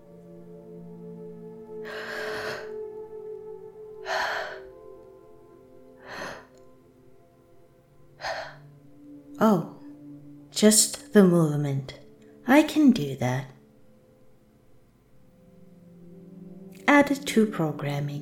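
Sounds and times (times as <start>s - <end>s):
non-human voice simulating gasping breaths: 1.8s - 2.8s, 4.0s - 4.8s, 6.0s - 6.6s, 8.2s - 8.8s
speech: 9.4s - 9.7s, 10.6s - 13.6s, 17.0s - 18.2s.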